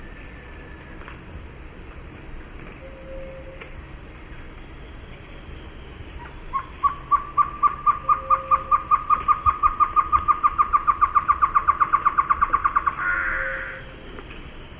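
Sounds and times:
great antshrike song with hollow hoots and harsh nasal snarl: 6.5s - 13.9s.

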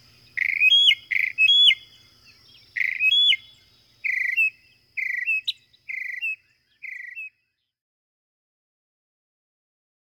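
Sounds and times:
northern mockingbird song: 0.0s - 7.8s.

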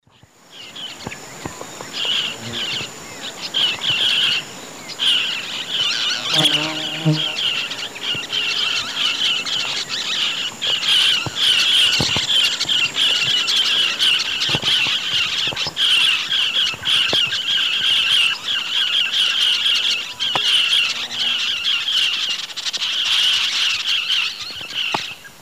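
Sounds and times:
Touit huetii flock flight calls in the Eastern Lowlands of South America: 0.6s - 25.1s.

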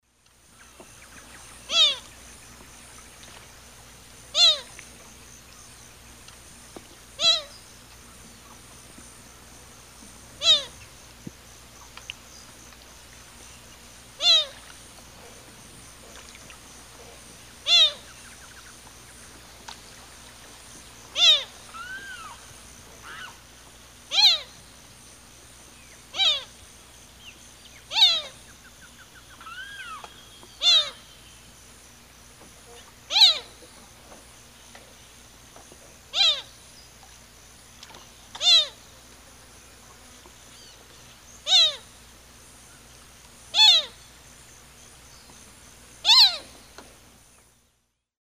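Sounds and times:
Porphyrula flavirostris calls in South American eastern lowlands: 0.5s - 3.4s, 4.3s - 6.2s, 6.8s - 7.8s, 10.3s - 11.0s, 13.2s - 23.4s, 24.1s - 24.7s, 25.7s - 31.5s, 32.6s - 34.9s, 35.6s - 36.6s, 37.8s - 38.8s, 40.0s - 41.9s, 43.5s - 44.0s, 46.0s - 47.5s.

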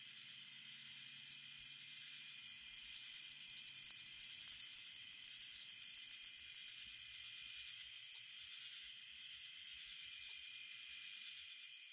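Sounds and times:
faint high hum: 0.0s - 11.9s
greater anglewing song in North America: 2.8s - 7.2s
loud clicks: 2.8s - 7.2s.

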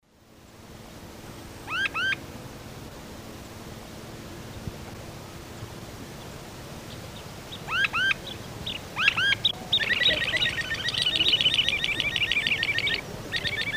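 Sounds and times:
Hoploxypterus cayanus ground call: 1.6s - 2.3s, 6.2s - 13.7s.

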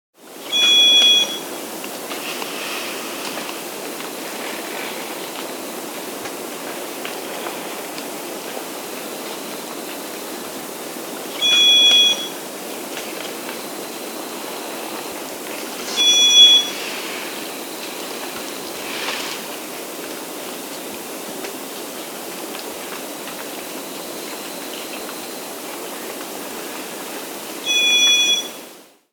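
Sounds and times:
White-cheeked solitaire Entomodestes leucotis calling in the Andes: 11.4s - 12.4s, 15.7s - 19.4s, 27.6s - 28.7s.

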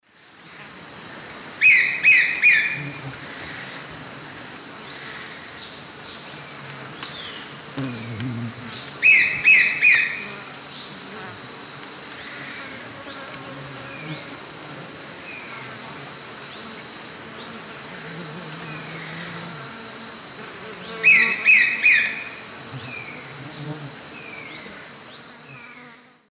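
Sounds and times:
Cnipodectes subbrunneus call in South American Eastern Lowlands: 1.6s - 2.8s, 9.0s - 10.2s, 20.9s - 22.4s.

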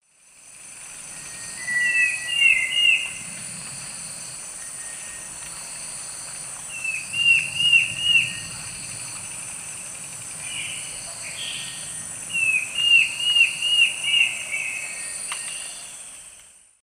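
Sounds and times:
Schistocichla schistacea singing in South American eastern lowlands: 1.4s - 3.2s, 6.8s - 8.5s, 10.5s - 16.0s.

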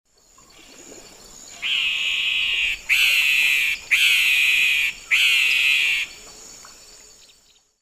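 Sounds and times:
Donacobius atricapilla calls in South America Eastern Lowlands: 1.5s - 6.2s.

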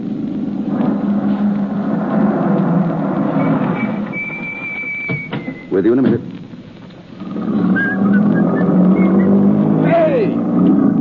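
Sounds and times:
car engine starting and running as the car drives away: 0.0s - 10.9s
thin whistling whine: 3.1s - 6.0s, 7.2s - 10.0s
speech: 5.8s - 6.4s.

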